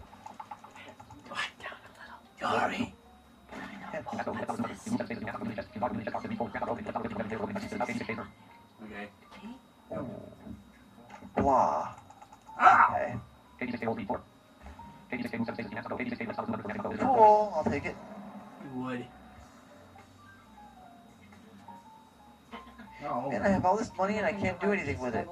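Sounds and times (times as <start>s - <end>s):
typing on a Perkins braille keyboard: 0.0s - 1.3s, 11.9s - 12.6s
quiet whispering: 0.6s - 2.3s
speech: 2.4s - 3.0s, 4.0s - 10.1s, 11.4s - 12.0s, 13.0s - 14.3s, 15.1s - 18.1s, 18.8s - 19.2s, 23.0s - 25.2s.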